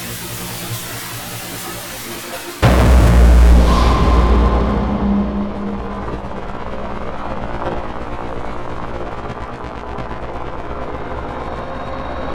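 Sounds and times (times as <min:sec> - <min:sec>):
bright crash: 0:02.6 - 0:07.7
dense droning rumble with sustained tones: 0:02.6 - 0:07.7
heavy cinematic trailer boom: 0:02.6 - 0:07.8.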